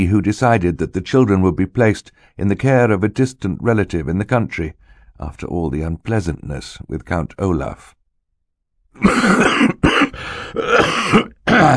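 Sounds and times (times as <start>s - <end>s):
speech: 0.0s - 8.0s, 9.0s - 11.7s
man coughing harshly into a white handkerchief: 9.0s - 11.7s.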